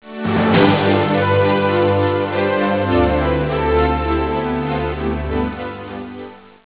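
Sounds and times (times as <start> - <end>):
orchestral music: 0.0 - 6.6.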